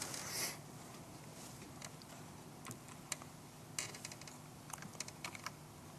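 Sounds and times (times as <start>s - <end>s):
soft steady hum: 0.0s - 5.9s
irregular typing on an unresponsive computer keyboard: 2.6s - 5.6s.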